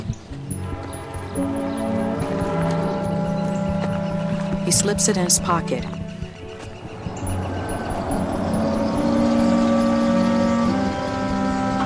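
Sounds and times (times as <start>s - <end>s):
car engine humming as the car rolls up and stops: 0.6s - 11.8s
speech: 4.7s - 6.2s.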